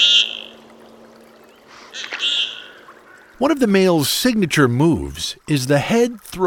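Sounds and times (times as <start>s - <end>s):
common goldeneye duck courtship calls on icy Lake Champlain in Vermont: 0.0s - 0.6s, 1.8s - 3.5s
faint steady hum: 0.0s - 6.4s
light water sounds: 0.0s - 6.4s
speech: 3.4s - 6.4s.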